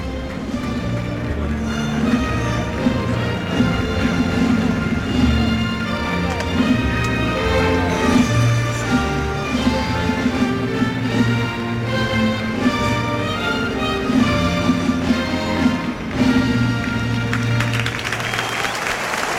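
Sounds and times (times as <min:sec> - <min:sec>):
scattered applause: 0:00.0 - 0:03.2, 0:15.9 - 0:19.3
brass band playing a national anthem in a large open venue: 0:00.0 - 0:18.3
murmuring crowd: 0:00.0 - 0:19.3.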